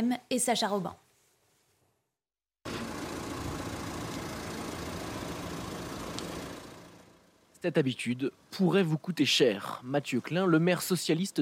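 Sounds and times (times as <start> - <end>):
speech: 0.0 - 1.1, 7.6 - 11.4
stationary car engine idling: 2.7 - 7.6.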